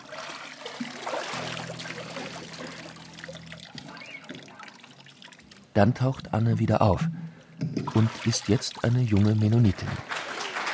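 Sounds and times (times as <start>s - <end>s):
water sloshing and trickling in a large wine tub: 0.0s - 5.8s, 7.3s - 9.6s
speech: 5.8s - 10.3s.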